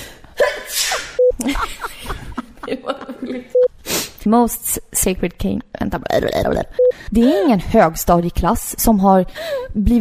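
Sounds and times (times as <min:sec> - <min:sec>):
sneeze: 0:00.6 - 0:01.2
short electronic beeps: 0:01.2 - 0:01.5, 0:03.5 - 0:03.7, 0:06.8 - 0:07.0
laughter: 0:01.4 - 0:03.6
speech: 0:04.2 - 0:09.9.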